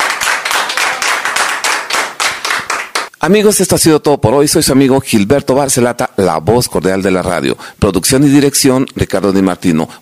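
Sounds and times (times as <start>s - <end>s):
audience applause at a cumbia sound-system event: 0.0s - 3.1s
speech: 3.2s - 9.9s.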